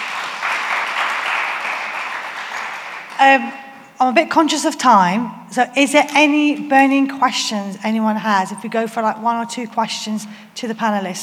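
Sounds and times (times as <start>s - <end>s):
audience applauding panelists at a panel event: 0.0s - 3.5s
speech: 3.2s - 11.2s.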